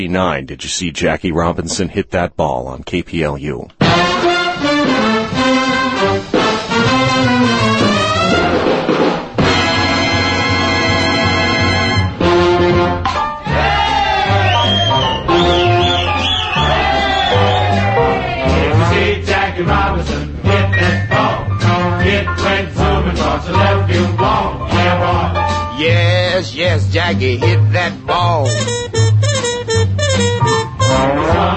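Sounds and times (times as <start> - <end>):
speech: 0.0 - 3.8, 23.4 - 29.2
brassy horns of a big band: 3.8 - 26.0, 28.3 - 31.5
rhythm section driving the beat: 3.8 - 31.5
steady walking bass: 6.3 - 8.7, 12.2 - 31.5.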